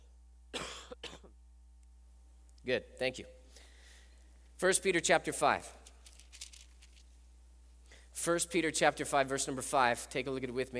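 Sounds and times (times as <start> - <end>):
person coughing harshly: 0.5 - 1.4
speech: 2.6 - 3.4, 4.6 - 5.8, 8.2 - 10.7.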